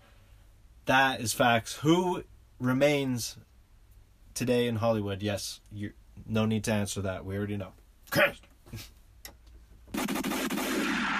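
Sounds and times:
speech: 0.9s - 3.5s, 4.4s - 9.0s
gunshot sound effect cracks: 10.0s - 11.1s.

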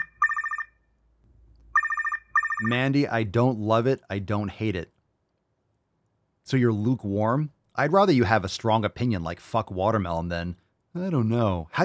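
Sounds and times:
telephone ringing for incoming call: 0.0s - 0.8s, 1.7s - 2.9s
speech: 2.6s - 4.9s, 6.5s - 11.8s.

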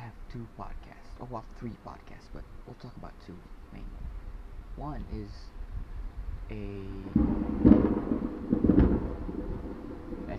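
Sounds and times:
speech: 0.3s - 4.2s, 4.8s - 5.6s, 6.5s - 8.6s
thunder from lightning rumbling: 4.8s - 10.3s.

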